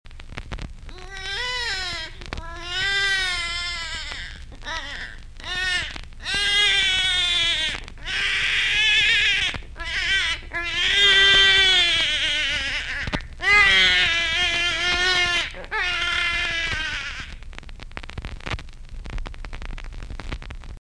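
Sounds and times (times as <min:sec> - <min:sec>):
baby: 0:00.9 - 0:17.4.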